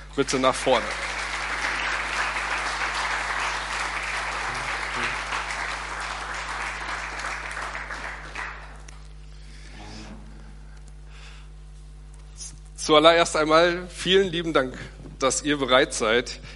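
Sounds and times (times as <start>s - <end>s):
speech: 0.2s - 1.1s, 12.9s - 16.5s
audience applause welcoming two guests onto the stage: 0.4s - 8.9s.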